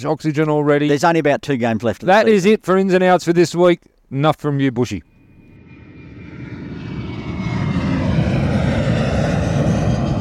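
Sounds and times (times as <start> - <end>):
speech: 0.0 - 5.1
big airplane engine roaring while landing at Hong Kong Airport: 5.1 - 10.1.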